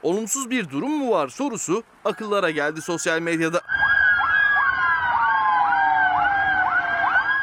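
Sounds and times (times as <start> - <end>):
speech: 0.0 - 3.9
traffic rumble in Istanbul in the evening: 0.0 - 7.4
new ambulances sent from Ankara with sirens wailing in Istanbul: 2.1 - 7.4.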